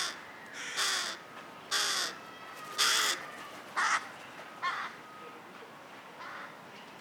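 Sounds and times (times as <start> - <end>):
carrion crow Corvus corone cawing: 0.0 - 2.2, 2.8 - 4.0.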